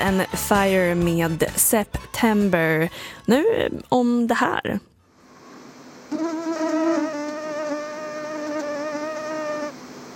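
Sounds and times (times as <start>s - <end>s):
speech: 0.0s - 4.9s
mosquito whine: 5.4s - 10.1s.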